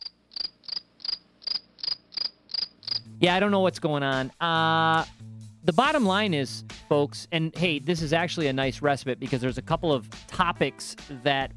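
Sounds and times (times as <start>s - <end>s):
crickets chirping: 0.0s - 3.1s
speech: 3.2s - 11.5s.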